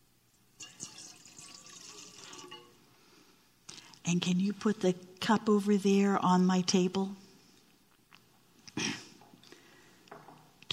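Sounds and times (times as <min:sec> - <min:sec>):
tap water poured into a bowl: 0:00.6 - 0:02.8
speech: 0:04.1 - 0:07.2.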